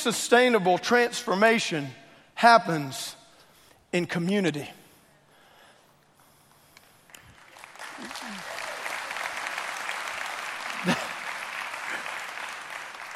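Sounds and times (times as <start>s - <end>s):
speech: 0.0s - 3.2s, 3.9s - 4.8s
crowd applauding: 7.0s - 13.1s.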